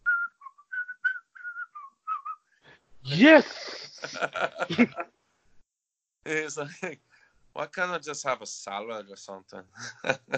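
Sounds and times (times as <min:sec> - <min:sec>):
person whistling a comedy movie soundtrack tune: 0:00.0 - 0:02.4
speech: 0:03.0 - 0:05.2, 0:06.2 - 0:10.3
laughter: 0:03.1 - 0:05.0, 0:06.3 - 0:06.9, 0:09.7 - 0:10.3.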